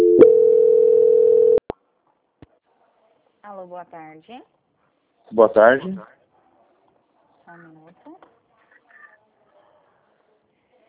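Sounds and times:
steady telephone tone while a call is transferred: 0.0 - 1.6
speech: 3.7 - 4.6, 5.3 - 6.2, 7.5 - 8.3.

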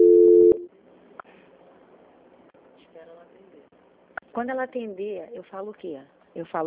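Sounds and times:
telephone line tone during a call transfer: 0.0 - 0.7
speech: 4.4 - 6.6.

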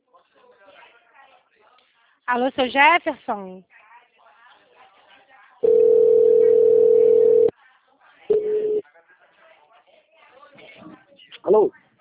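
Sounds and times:
speech: 2.3 - 3.8, 11.5 - 11.8
telephone busy tone after a call drops: 5.6 - 7.5, 8.3 - 8.8.

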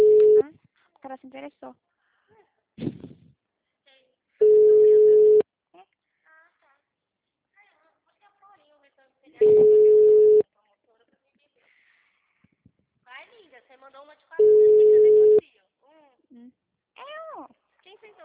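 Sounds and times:
phone line ringing tones on an unanswered call: 0.0 - 0.4, 4.4 - 5.4, 9.4 - 10.4, 14.4 - 15.4
speech: 1.2 - 3.2.

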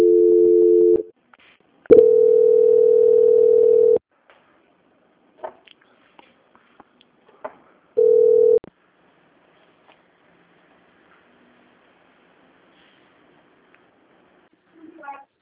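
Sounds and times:
telephone line tone while a call is transferred: 0.0 - 1.1, 1.9 - 4.0, 8.0 - 8.6.

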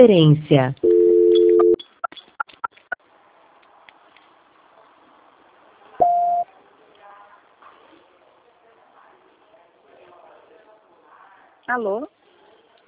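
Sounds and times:
speech: 0.0 - 0.9, 11.7 - 12.2
low telephone voicemail tone: 0.8 - 1.8, 6.0 - 6.5
short high-pitched voicemail beep: 6.0 - 6.4.

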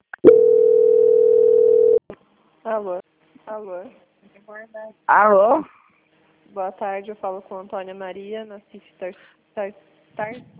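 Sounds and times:
telephone tone during bank call transfer: 0.2 - 2.0
speech: 2.7 - 5.8, 6.5 - 10.5.

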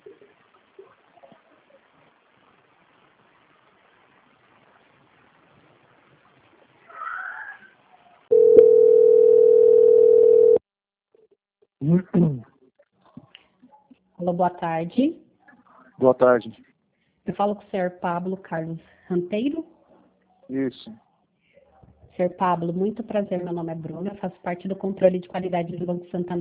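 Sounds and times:
telephone line tone during a call transfer: 8.3 - 10.6
speech: 14.3 - 15.2, 16.0 - 16.7, 17.4 - 19.7, 20.5 - 21.0, 22.2 - 26.4.

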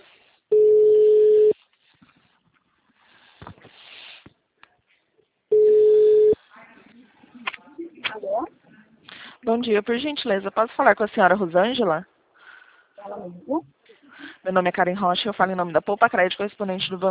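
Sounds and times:
faint noise: 0.0 - 17.1
telephone ringback tone while placing a call: 0.5 - 1.6, 5.5 - 6.4
speech: 9.5 - 12.1, 13.2 - 13.7, 14.5 - 17.1.

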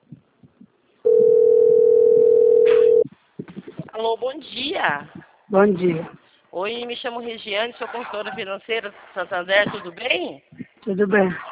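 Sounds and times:
telephone dial tone while placing a call: 1.1 - 3.0
speech: 4.0 - 11.5.

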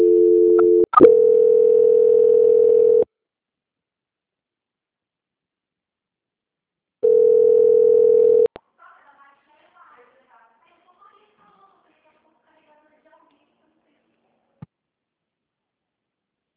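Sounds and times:
telephone tone while a call is being transferred: 0.0 - 3.1, 7.0 - 8.5.

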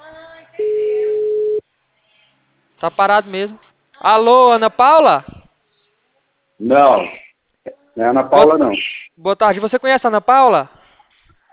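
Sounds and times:
telephone line tone while placing a call: 0.6 - 1.6
speech: 2.8 - 5.4, 6.6 - 7.2, 8.0 - 10.8.

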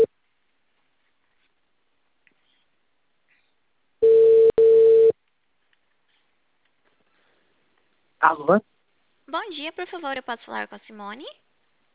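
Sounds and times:
telephone tone of an outgoing call: 4.0 - 5.2
speech: 8.2 - 8.7, 9.3 - 11.4.

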